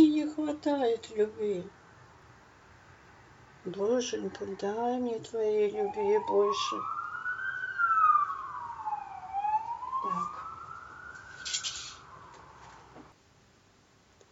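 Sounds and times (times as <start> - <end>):
speech: 0.5 - 1.8, 3.6 - 7.0
emergency vehicle siren wailing past outside: 5.2 - 13.2.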